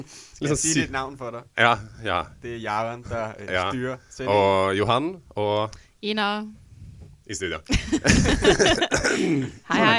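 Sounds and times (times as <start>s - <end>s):
speech: 0.0s - 6.6s, 7.3s - 9.9s
laughter: 7.7s - 9.9s
person coughing harshly: 8.8s - 9.6s.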